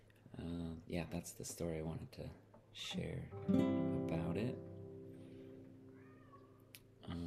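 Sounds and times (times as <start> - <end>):
speech: 0.4 - 4.7
indoor cats meowing along to a song: 5.9 - 6.6.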